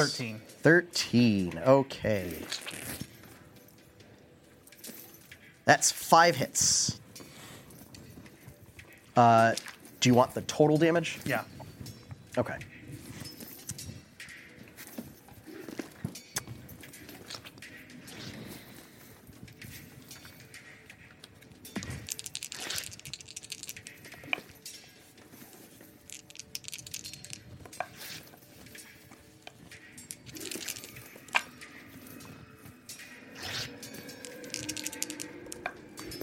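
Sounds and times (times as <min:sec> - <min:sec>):
speech: 0:00.0 - 0:03.1, 0:05.6 - 0:07.0, 0:09.2 - 0:11.5, 0:12.4 - 0:12.7
many dice clattering and tumbling: 0:21.8 - 0:24.4, 0:26.0 - 0:28.2, 0:30.1 - 0:31.5, 0:34.1 - 0:36.2.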